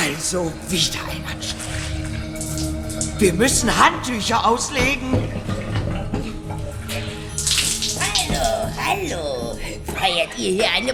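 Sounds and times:
speech: 0.0 - 5.3, 10.1 - 10.9
water overflowing from a hotel-room sink clogged with a chamois cloth: 1.4 - 8.9.

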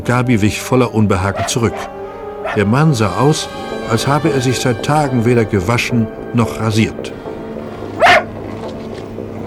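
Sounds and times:
speech: 0.0 - 7.2
dog barking: 1.3 - 2.8, 8.0 - 8.3.

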